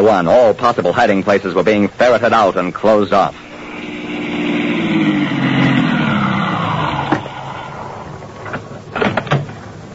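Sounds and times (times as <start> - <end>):
speech: 0.1 - 3.5
car engine humming and winding down as the car stops: 3.4 - 9.0.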